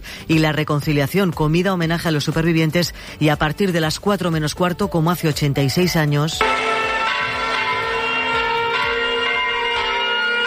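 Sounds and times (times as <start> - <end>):
speech: 0.3 - 6.8
church bells ringing: 6.4 - 10.4.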